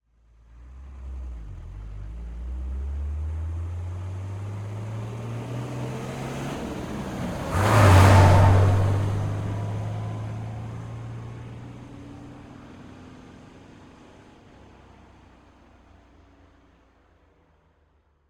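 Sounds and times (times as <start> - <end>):
Mercedes-Benz Unimog U2450 4x4 truck passing fast and accelerating: 0.6 - 15.0.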